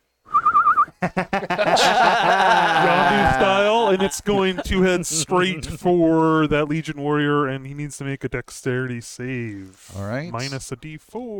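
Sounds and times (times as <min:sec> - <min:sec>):
short warbling whistle: 0:00.3 - 0:01.0
laughter: 0:01.0 - 0:05.9
speech: 0:01.0 - 0:11.3.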